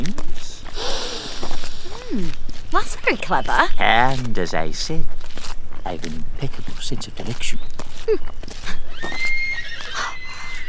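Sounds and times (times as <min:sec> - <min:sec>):
speech: 0:02.2 - 0:05.2, 0:05.8 - 0:09.2
horse neighing along a road: 0:08.7 - 0:10.6.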